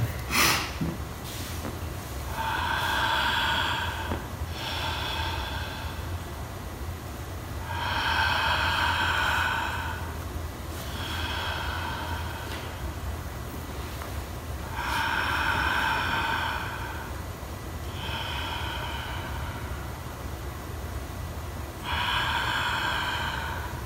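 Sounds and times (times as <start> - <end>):
low hum: 0.0 - 23.8
slow deliberate breathing close to the microphone: 0.2 - 23.8.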